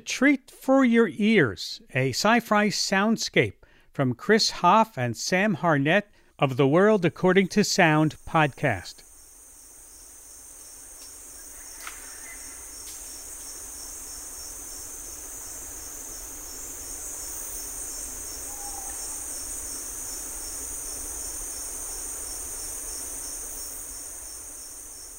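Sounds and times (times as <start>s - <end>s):
speech: 0.0s - 9.1s
faint continuous hiss: 5.3s - 25.1s
insect chorus from a slowed-down recording of a forest in Panama: 6.6s - 25.1s.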